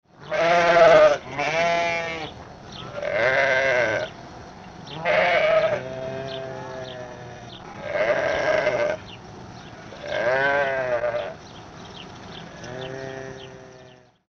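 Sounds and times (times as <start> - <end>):
Karakul sheep bleating: 0.2 - 4.1, 4.9 - 9.0, 9.9 - 11.4, 12.5 - 14.2.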